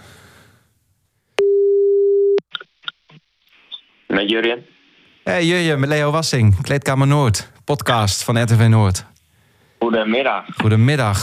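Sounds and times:
telephone ringback tone of an outgoing call: 1.4 - 2.4
speech: 4.2 - 9.1, 9.8 - 11.2.

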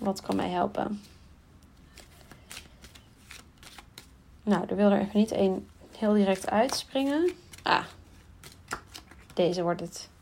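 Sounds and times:
speech: 0.0 - 1.2, 4.5 - 8.0, 9.4 - 10.1
tarot cards shuffled by hand: 1.8 - 4.2, 6.3 - 9.4.

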